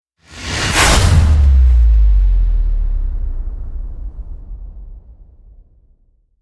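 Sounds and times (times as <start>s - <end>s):
descending slider hit effect: 0.4s - 6.0s.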